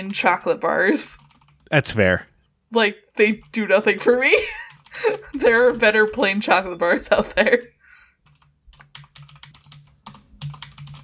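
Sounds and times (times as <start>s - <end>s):
typing on a computer keyboard: 0.0s - 1.6s, 3.4s - 6.6s, 8.2s - 11.0s
speech: 0.0s - 7.8s.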